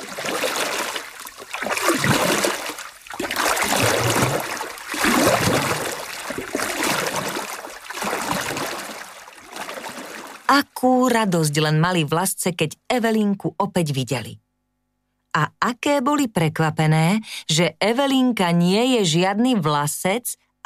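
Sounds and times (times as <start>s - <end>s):
water sloshing and trickling around a small boat: 0.0s - 10.6s
speech: 10.6s - 14.4s, 15.4s - 20.6s.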